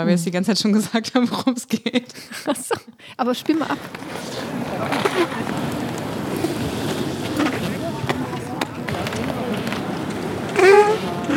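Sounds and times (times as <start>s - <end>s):
speech: 0.0s - 5.8s
laughter: 1.2s - 11.3s
roller skates rolling across a hard floor during roller derby training: 3.4s - 11.3s.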